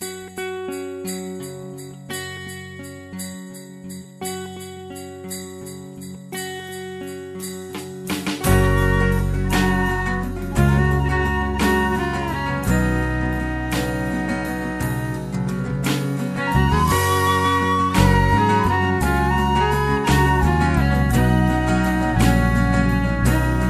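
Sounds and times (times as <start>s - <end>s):
electric December music: 7.2s - 23.6s.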